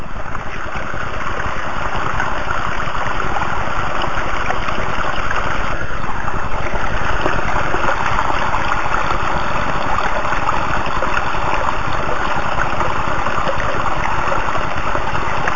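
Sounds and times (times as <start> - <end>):
creek water rushing at a waterfall: 0.0 - 15.5.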